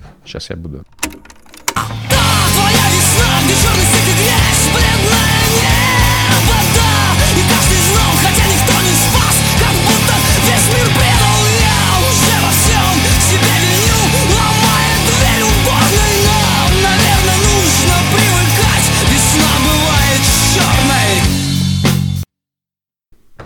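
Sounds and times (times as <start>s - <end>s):
recorded song with dense layered instrumentation and driving rhythm: 0.0s - 22.3s
speech: 0.3s - 1.3s.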